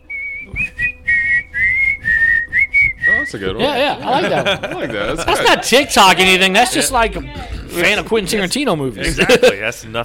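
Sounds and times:
whistled phone ringtone melody: 0.0 - 3.6
speech: 3.3 - 10.0
laughter: 3.6 - 8.4, 9.0 - 9.8.

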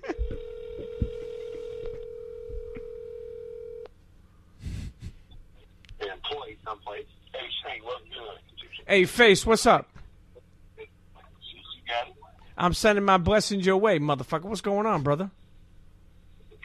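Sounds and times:
steady telephone tone: 0.0 - 3.9
speech: 8.9 - 9.9, 12.6 - 15.4.

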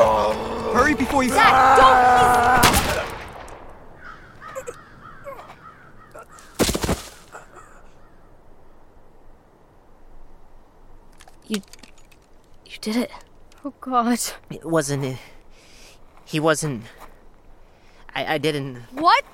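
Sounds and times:
speech: 0.8 - 2.5, 11.5 - 11.8, 12.8 - 15.4, 16.3 - 17.0, 18.1 - 19.3
gunshots in a tense drama scene: 2.4 - 3.7
crow-like cawing: 3.9 - 6.6, 7.3 - 8.8.

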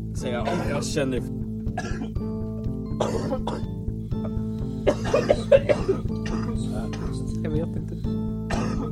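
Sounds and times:
speech: 0.2 - 2.4, 3.0 - 3.8, 4.8 - 5.9
throat clearing: 0.4 - 0.8, 1.8 - 2.1, 3.0 - 7.2, 8.5 - 8.8
person coughing harshly: 0.4 - 0.9, 1.8 - 2.2, 3.0 - 7.2, 8.5 - 8.8.

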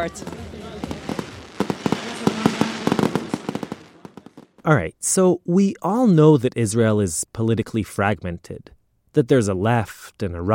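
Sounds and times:
speech: 0.0 - 0.5, 4.6 - 10.5
fireworks crackling and popping: 0.0 - 4.7.

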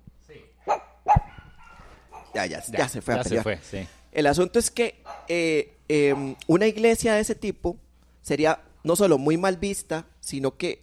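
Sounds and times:
dog barking: 0.6 - 2.5, 5.1 - 5.4, 6.0 - 6.4
faint dog yelp: 0.7 - 2.4
speech: 2.4 - 10.8.

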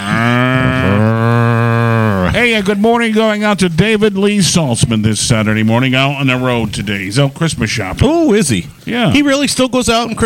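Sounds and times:
cow mooing: 0.0 - 2.6
speech: 0.8 - 1.3, 2.4 - 10.2.

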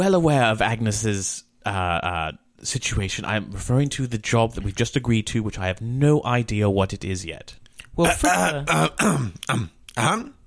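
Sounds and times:
speech: 0.0 - 10.4
voice imitating a gruff throat-clearing cough of a reddish-tinted creature: 8.0 - 10.4.

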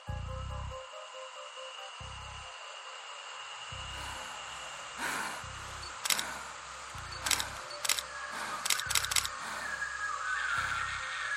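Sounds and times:
low ambient drone and hiss: 0.0 - 11.3
camera shutter clicks at night in pitch darkness: 6.0 - 6.4, 7.2 - 9.4.

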